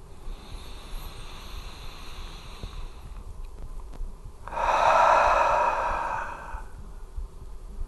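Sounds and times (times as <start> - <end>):
slow deep breath during a guided heart-focused breathing meditation: 0.0 - 3.4, 4.4 - 7.2
steady low hiss: 0.0 - 7.8.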